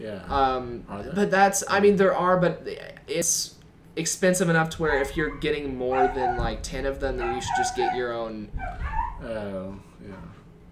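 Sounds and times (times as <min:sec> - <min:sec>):
speech: 0:00.0 - 0:10.4
dogs wrestling in play, whining and barking: 0:04.9 - 0:09.4.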